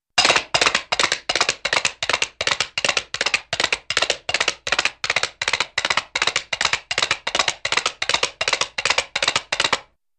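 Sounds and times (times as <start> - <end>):
funny rapid horse hooves: 0.2 - 9.9.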